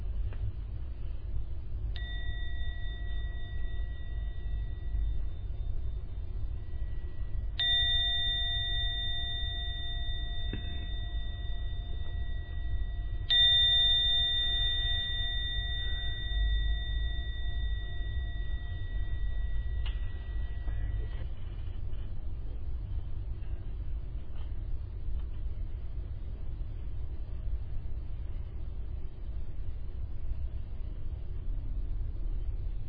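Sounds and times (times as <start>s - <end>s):
low hum: 0.0s - 32.8s
meditation gong struck: 2.0s - 21.2s.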